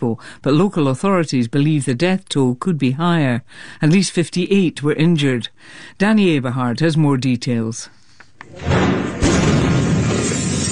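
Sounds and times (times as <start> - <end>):
speech: 0.0 - 9.2
powerful explosion blast shattering windows: 8.5 - 10.7
rumbling roar and debris: 8.6 - 10.7.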